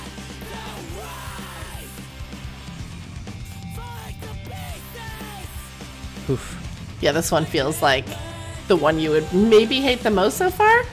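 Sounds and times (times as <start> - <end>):
group of people yelling: 0.0 - 2.0, 3.7 - 5.7
dense driving musical backing: 0.0 - 10.9
speech: 6.3 - 10.9.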